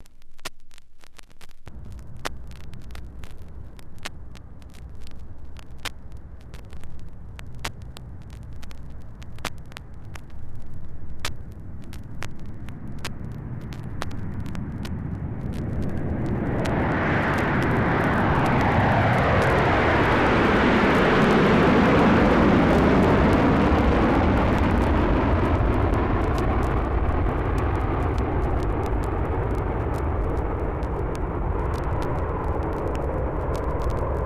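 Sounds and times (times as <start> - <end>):
jet taking off: 11.3 - 34.2.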